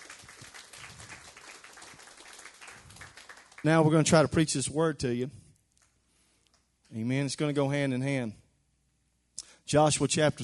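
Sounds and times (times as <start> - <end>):
crowd applauding: 0.0 - 4.3
speech: 3.6 - 5.4, 7.0 - 8.4, 9.7 - 10.4.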